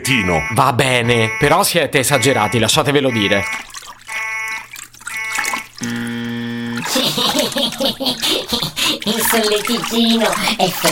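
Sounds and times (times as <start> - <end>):
speech: 0.1 - 3.7, 5.8 - 6.0, 7.8 - 10.9
water running from a tap: 2.7 - 10.9
laughter: 6.8 - 9.6.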